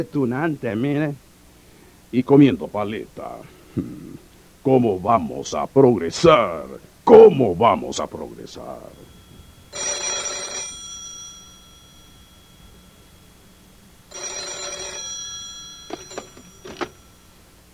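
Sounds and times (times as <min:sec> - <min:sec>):
speech: 0:00.0 - 0:01.2, 0:02.1 - 0:09.1
telephone bell ringing: 0:08.5 - 0:17.4.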